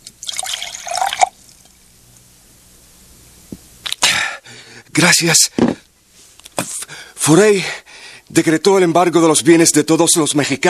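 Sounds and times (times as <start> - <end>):
drinking water pouring into a glass: 0.2 - 1.7
speech: 5.0 - 5.6, 7.3 - 10.6.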